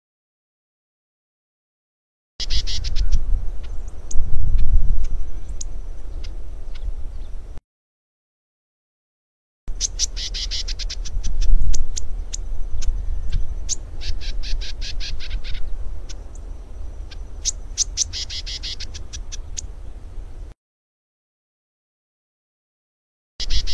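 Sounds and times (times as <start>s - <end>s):
lesser grass-finch singing rapid chattering bursts: 2.4s - 7.6s, 9.7s - 20.0s, 23.4s - 23.7s
speech: 9.8s - 10.4s.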